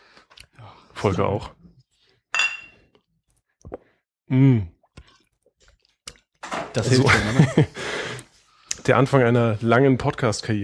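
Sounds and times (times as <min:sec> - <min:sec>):
speech: 0:01.0 - 0:01.6, 0:04.3 - 0:04.7, 0:06.8 - 0:07.9, 0:08.8 - 0:10.6
beer glass clinking while someone takes a sip: 0:02.3 - 0:02.8
laughter: 0:06.9 - 0:08.0.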